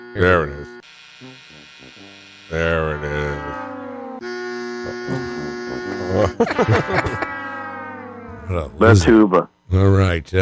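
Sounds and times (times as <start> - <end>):
loud electronic buzzer from an elimination button: 0.0 - 10.4
speech: 0.1 - 3.5, 6.2 - 7.3, 8.5 - 10.4
laughter: 4.9 - 7.6.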